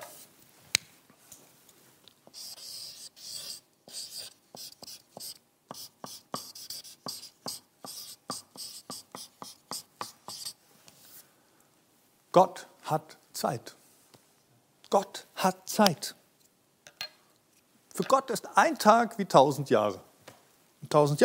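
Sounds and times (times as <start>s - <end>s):
person writing with a pen scratching across paper: 2.3s - 10.6s
speech: 12.4s - 13.8s, 14.9s - 16.2s, 18.1s - 20.1s, 20.9s - 21.2s.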